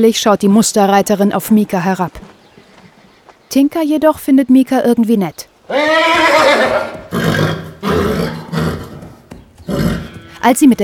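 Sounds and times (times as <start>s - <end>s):
speech: 0.0s - 2.4s, 3.6s - 8.0s, 10.4s - 10.8s
horse neighing: 5.6s - 10.4s.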